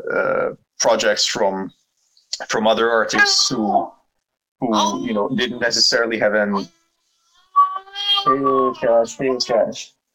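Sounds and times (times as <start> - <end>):
speech: 0.0 - 1.8, 2.4 - 4.0, 4.6 - 6.8, 8.2 - 10.0
cat meowing: 7.5 - 9.4.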